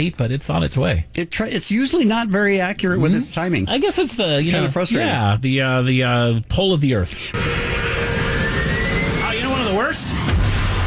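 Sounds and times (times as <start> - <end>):
speech: 0.0 - 7.8
wavering falling whistle: 7.4 - 9.6
steady engine-like roar: 7.4 - 10.8.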